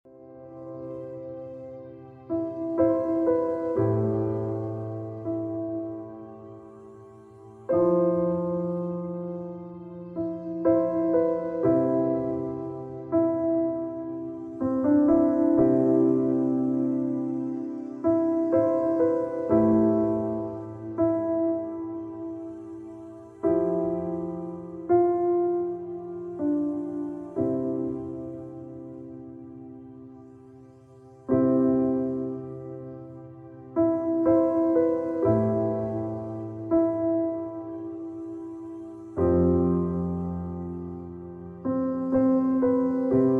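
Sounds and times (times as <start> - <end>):
relaxing piano music: 0.0 - 43.3.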